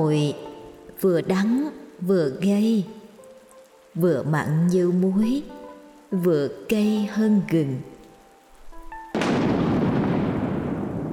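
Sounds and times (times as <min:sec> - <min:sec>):
speech: 0:00.0 - 0:03.0, 0:04.0 - 0:07.9
rainfall: 0:00.0 - 0:11.1
thunderclap: 0:09.1 - 0:11.1.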